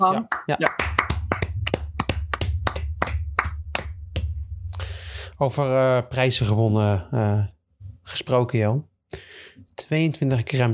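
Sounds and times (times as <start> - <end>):
speech: 0.0 - 0.9, 5.4 - 10.7
hands clapping as applause for a sports team: 0.0 - 4.4.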